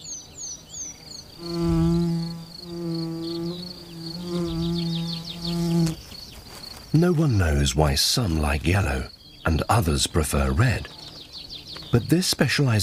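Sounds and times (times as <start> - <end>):
faint birds chirping: 0.0 - 12.8
bee buzzing around a flower: 1.1 - 6.1
speech: 1.4 - 1.7, 7.0 - 11.0, 11.9 - 12.8.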